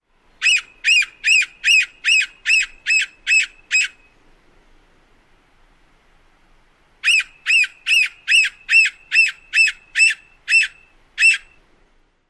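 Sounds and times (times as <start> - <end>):
Red-naped Sapsucker squeal calls: 0.4 - 4.0, 7.0 - 11.6.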